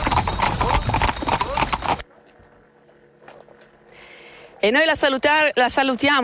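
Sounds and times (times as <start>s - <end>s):
horse hooves of a horse-drawn carriage trotting at an estate in Bioggio: 0.0s - 3.8s
speech: 4.6s - 6.2s.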